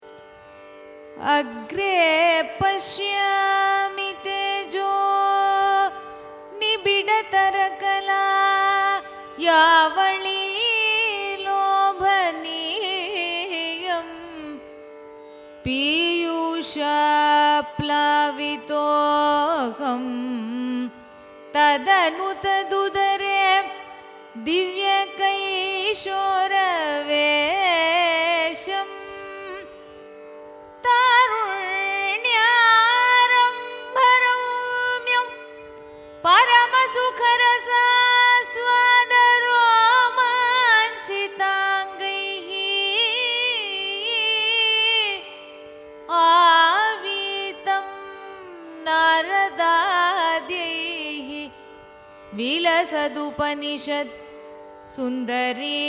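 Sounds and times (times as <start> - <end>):
Carnatic sloka chanted in raga Kambhoji: 0.0 - 55.8.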